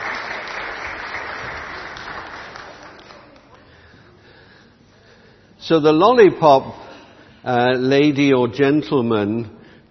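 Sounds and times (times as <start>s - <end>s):
room full of people clapping: 0.0s - 3.8s
speech: 5.7s - 6.8s, 7.4s - 9.9s.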